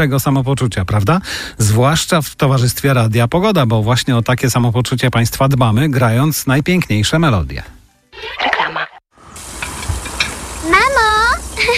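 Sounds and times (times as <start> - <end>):
speech: 0.0 - 8.5
pork sizzling in a hot pan for cutlets: 9.2 - 11.7.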